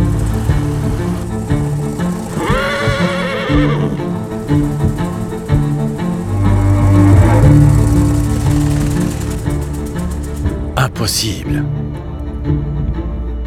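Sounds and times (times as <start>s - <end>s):
low droning background: 0.0s - 13.1s
horse neighing: 0.5s - 4.6s, 6.2s - 8.6s
speech: 11.1s - 11.8s.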